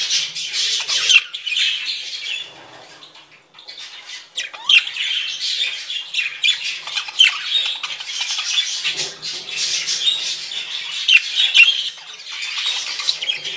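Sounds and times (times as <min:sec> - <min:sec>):
flock of parakeets calling together: 0:00.0 - 0:13.5.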